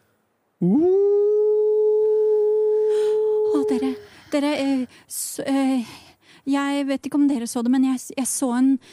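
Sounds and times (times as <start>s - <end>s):
speech: 0.6s - 1.2s, 4.3s - 8.9s
wolf howling: 0.6s - 4.0s.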